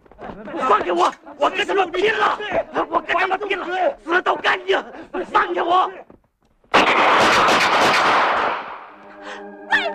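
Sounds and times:
speech: 0.4s - 6.1s
loud blast of gunfire during a chase: 6.7s - 8.9s.

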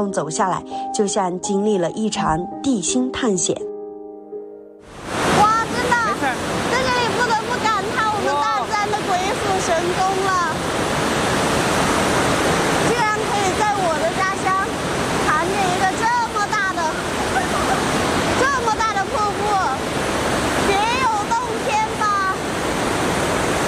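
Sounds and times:
speech: 0.0s - 3.7s
roaring waterfall rushing below a canyon suspension bridge beneath high rock walls: 4.9s - 23.6s.

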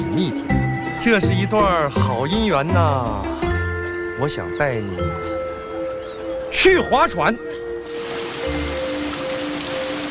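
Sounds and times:
speech: 0.0s - 3.4s, 4.2s - 5.3s, 6.6s - 7.6s
sudden rain shower hissing: 7.8s - 10.0s.

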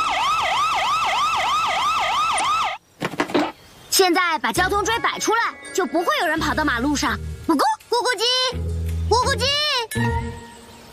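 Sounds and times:
emergency vehicle siren wailing: 0.0s - 2.8s
speech: 4.0s - 10.1s.

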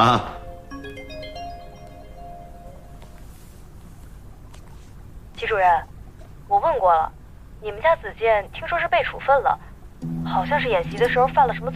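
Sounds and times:
speech: 0.0s - 0.4s, 5.4s - 5.9s, 6.5s - 11.7s
phone ringing with bright electronic melodic tones: 0.0s - 3.4s, 10.0s - 11.7s.

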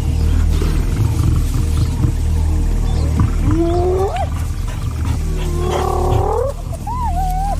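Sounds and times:
lion growling while feeding in the bushes: 0.1s - 7.5s
rising whoop-like animal calls: 3.5s - 4.3s, 5.4s - 7.5s.

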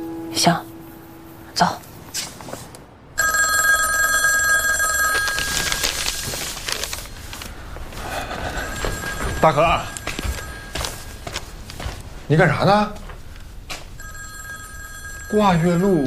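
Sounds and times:
room noise: 0.0s - 16.0s
speech: 0.4s - 0.7s, 1.6s - 1.9s, 9.4s - 9.9s, 12.3s - 13.0s, 15.3s - 16.0s
telephone ringing with shrill bell tone: 3.2s - 6.8s, 7.7s - 11.6s, 13.9s - 16.0s.

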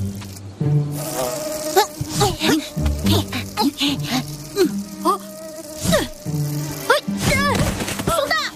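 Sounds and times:
swarm of mosquitoes whining and buzzing: 0.0s - 8.5s.

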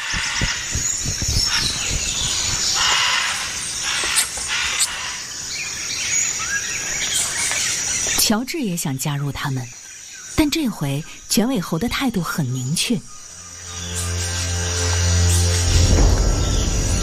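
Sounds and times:
macaws squawking: 0.0s - 5.3s
dense buzzing forest background: 0.0s - 17.0s
speech: 8.3s - 9.8s, 10.4s - 13.2s.

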